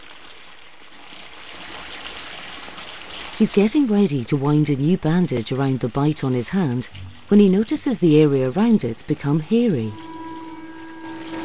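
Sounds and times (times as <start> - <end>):
water running from a tap into a bathtub: 0.0 - 11.4
speech: 3.4 - 10.1.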